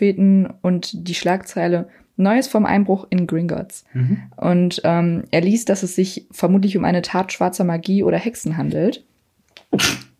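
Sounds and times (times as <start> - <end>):
speech: 0.0 - 9.1, 9.7 - 10.0
short breathy intake before a sneeze: 3.9 - 4.3
person sneezing: 9.7 - 10.1.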